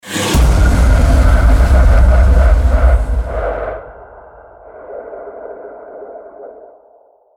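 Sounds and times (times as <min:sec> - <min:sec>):
aggressive hit logo: 0:00.0 - 0:04.5.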